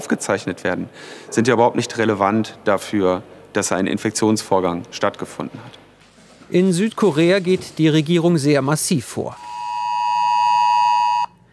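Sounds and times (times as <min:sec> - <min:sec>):
speech: 0:00.1 - 0:05.8, 0:06.5 - 0:09.4
loud steady piercing electronic alert tone: 0:09.4 - 0:11.3.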